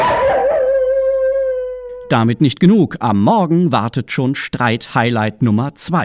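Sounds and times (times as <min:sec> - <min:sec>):
neighbour's dog howling at night: 0:00.0 - 0:02.1
speech: 0:02.1 - 0:06.0.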